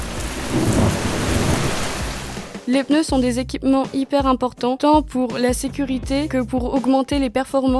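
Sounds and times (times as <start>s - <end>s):
deep roll of thunder: 0.0s - 2.6s
heavy rain: 0.0s - 2.7s
speech: 2.7s - 7.7s.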